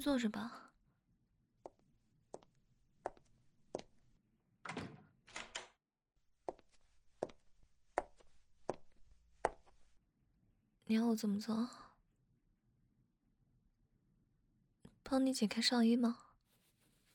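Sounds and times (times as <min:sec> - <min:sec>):
speech: 0:00.0 - 0:00.6, 0:10.9 - 0:11.9, 0:15.1 - 0:16.3
door closing: 0:04.6 - 0:05.7.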